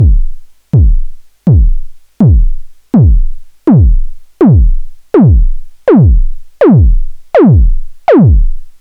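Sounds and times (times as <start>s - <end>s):
Monotron synthesizer kick drum: 0.0s - 8.7s.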